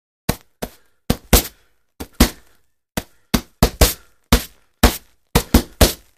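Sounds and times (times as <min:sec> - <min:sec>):
boxing gloves hitting: 0:00.3 - 0:06.1.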